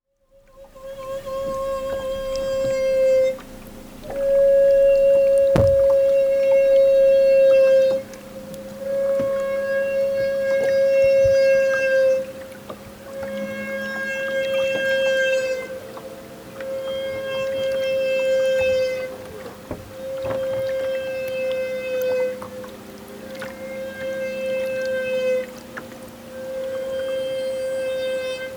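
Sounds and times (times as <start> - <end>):
humpback whale bubble net feeding in Alaska: 0.6 - 28.5.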